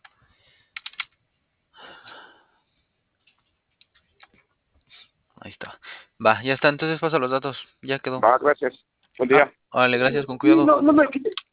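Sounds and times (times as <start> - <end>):
typing on a keyboard: 0.8 - 1.2
speech: 5.6 - 11.3.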